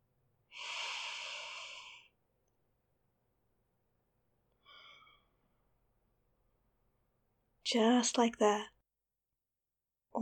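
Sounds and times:
deep breaths inhaling steam from something hot: 0.6s - 2.1s
speech: 7.7s - 8.7s.

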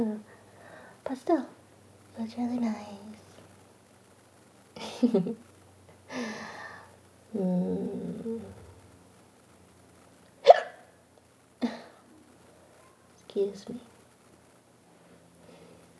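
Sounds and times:
speech: 1.1s - 1.6s, 2.2s - 3.2s, 4.8s - 5.5s, 7.3s - 8.6s, 13.4s - 13.9s
hiccups: 10.4s - 10.9s.

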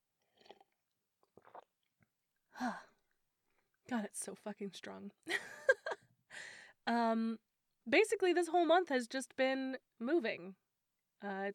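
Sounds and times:
quiet slurping sips of tea: 0.2s - 1.8s
speech: 2.6s - 2.9s, 3.9s - 5.5s, 6.9s - 10.6s, 11.2s - 11.5s.

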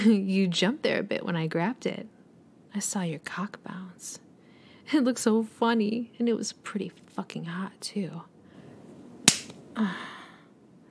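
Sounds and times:
speech: 0.0s - 2.2s, 2.8s - 4.2s, 4.9s - 8.3s, 9.8s - 10.2s
hand slapping bare buttocks: 9.3s - 9.6s.

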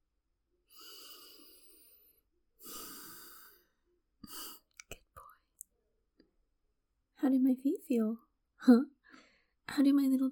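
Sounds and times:
deep breaths drawn in: 0.7s - 3.7s
speech: 7.2s - 9.0s, 9.8s - 10.3s.

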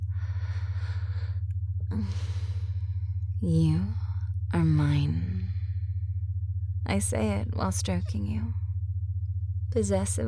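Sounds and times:
slow relaxed breathing: 0.0s - 3.2s
steady low hum: 0.0s - 10.2s
speech: 1.9s - 2.3s, 3.4s - 5.3s, 6.9s - 8.6s, 9.7s - 10.2s.

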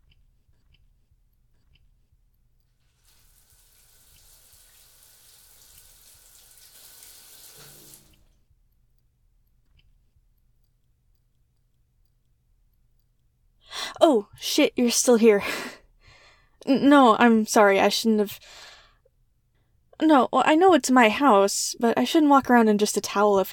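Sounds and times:
shower water running: 2.8s - 8.3s
speech: 14.1s - 15.8s, 16.7s - 18.7s, 20.0s - 23.5s.

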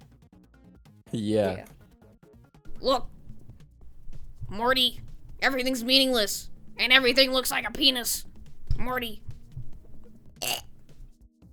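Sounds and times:
speech: 1.1s - 1.8s, 2.8s - 3.1s, 4.5s - 9.2s
faint noise: 2.7s - 11.1s
short raspy burp: 2.7s - 11.1s.

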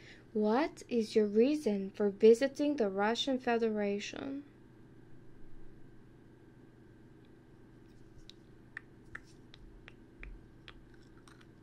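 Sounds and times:
steady low hum: 0.0s - 11.6s
speech: 0.4s - 4.5s
teeth biting on a pencil: 8.2s - 11.6s.

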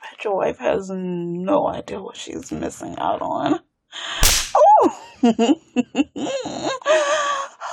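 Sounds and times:
speech: 0.3s - 3.6s, 4.8s - 7.3s
hand slapping skin: 4.2s - 4.6s.

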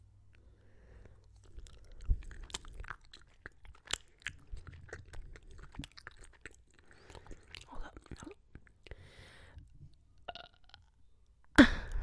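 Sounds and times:
cherry hard candy being chewed: 0.3s - 9.0s.

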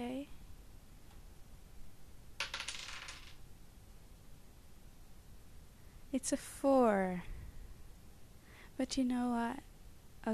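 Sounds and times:
dice being rolled across a surface: 2.4s - 3.4s
speech: 6.1s - 7.3s, 8.8s - 10.3s.

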